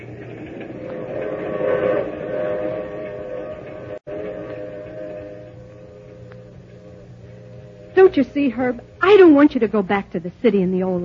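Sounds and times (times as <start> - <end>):
train rolling along rails with rumbling clatter: 0.0 - 10.1
faint train whistle: 0.8 - 8.9
speech: 8.1 - 11.0.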